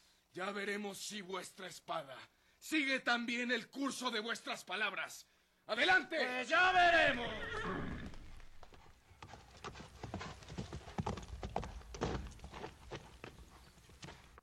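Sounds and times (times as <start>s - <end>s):
speech: 0.4s - 7.8s
horses galloping hard as riders flee: 6.6s - 14.4s.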